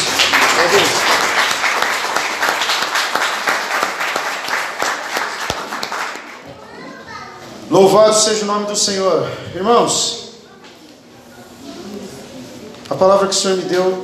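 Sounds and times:
congregation applauding: 0:00.0 - 0:06.5
speech: 0:07.8 - 0:10.2, 0:13.0 - 0:14.0.

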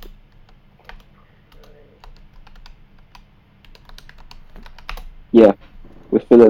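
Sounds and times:
typing on a computer keyboard: 0:00.0 - 0:05.1
speech: 0:05.3 - 0:05.7, 0:06.3 - 0:06.4.

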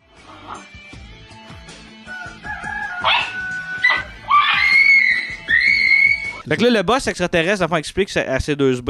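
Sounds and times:
rooster crowing and screeching: 0:02.0 - 0:06.4
speech: 0:06.5 - 0:08.8.

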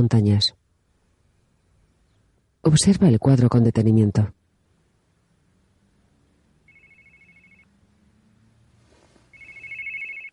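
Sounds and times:
speech: 0:00.0 - 0:00.6, 0:02.6 - 0:04.4
faint noise: 0:00.0 - 0:10.3
mobile phone ringing with an electronic trill: 0:06.7 - 0:07.7, 0:09.3 - 0:10.3.

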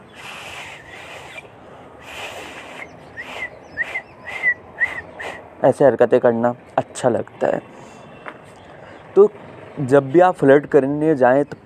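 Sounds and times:
person whistling a catcall with high thin chirps: 0:00.1 - 0:05.4
speech: 0:05.6 - 0:07.8, 0:09.2 - 0:11.6.

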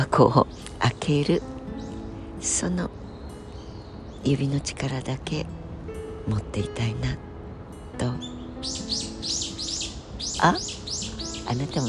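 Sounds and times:
several birds chirping: 0:00.0 - 0:05.5, 0:08.0 - 0:11.8
speech: 0:00.1 - 0:01.6, 0:02.4 - 0:03.0, 0:04.2 - 0:05.6, 0:06.3 - 0:07.3, 0:08.0 - 0:09.5, 0:10.4 - 0:10.8, 0:11.5 - 0:11.8.

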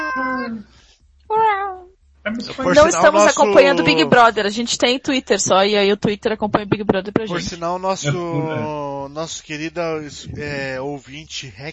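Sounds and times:
cat meowing: 0:00.0 - 0:00.7
speech: 0:00.5 - 0:01.4, 0:02.3 - 0:11.7
laughter: 0:02.3 - 0:04.4, 0:07.3 - 0:08.9, 0:10.0 - 0:10.7.

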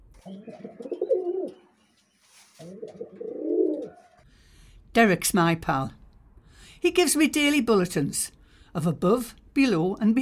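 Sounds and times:
speech: 0:00.2 - 0:00.9, 0:05.0 - 0:06.0, 0:06.8 - 0:10.2
pigeon cooing: 0:00.2 - 0:01.7, 0:02.6 - 0:04.2.

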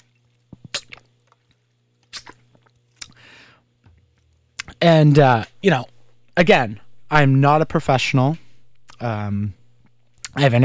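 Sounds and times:
low steady hum: 0:00.0 - 0:10.6
person sipping water: 0:02.1 - 0:03.2
speech: 0:04.8 - 0:08.4, 0:09.0 - 0:09.6, 0:10.4 - 0:10.6.

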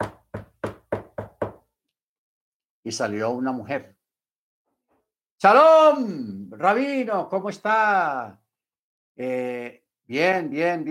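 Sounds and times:
knocking on a wooden door: 0:00.0 - 0:01.7
speech: 0:02.8 - 0:04.0, 0:05.4 - 0:08.4, 0:09.2 - 0:10.9.

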